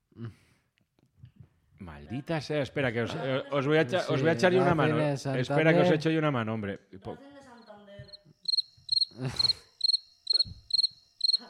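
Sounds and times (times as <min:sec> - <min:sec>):
speech: 0:02.0 - 0:07.3, 0:09.2 - 0:09.5
crickets chirping: 0:07.6 - 0:11.4.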